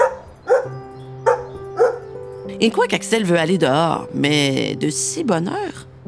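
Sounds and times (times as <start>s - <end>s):
dog yapping nervously: 0.0s - 2.2s
speech: 2.6s - 5.9s.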